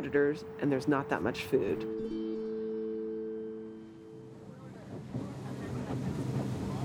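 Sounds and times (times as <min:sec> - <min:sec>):
speech: 0:00.0 - 0:02.2
boat motor droning on a river: 0:02.9 - 0:06.8
rushing wind: 0:04.3 - 0:06.8
churning water on a river: 0:04.6 - 0:06.8.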